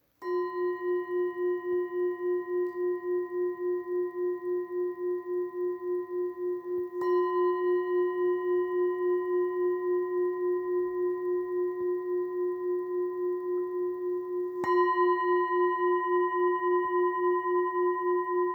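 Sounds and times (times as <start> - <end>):
14cm Tibetan singing bowls in F: 0.2 - 18.5.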